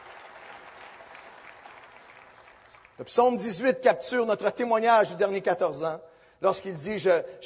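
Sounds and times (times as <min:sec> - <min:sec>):
large church audience applauding during a worship service: 0:00.0 - 0:03.1
speech: 0:03.0 - 0:07.4.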